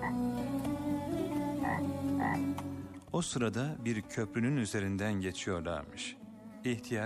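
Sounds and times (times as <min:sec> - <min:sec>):
frogs croaking in a creek: 0:00.0 - 0:00.2, 0:01.6 - 0:02.4
speech: 0:00.1 - 0:00.6, 0:01.7 - 0:07.0.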